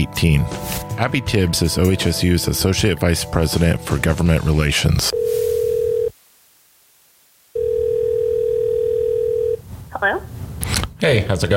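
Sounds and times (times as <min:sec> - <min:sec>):
speech: 0:00.0 - 0:05.4, 0:11.0 - 0:11.5
electronic ringback tones over a phone line: 0:05.1 - 0:06.1, 0:07.6 - 0:09.6
woman answering phone at her house: 0:05.2 - 0:06.1, 0:07.6 - 0:10.3.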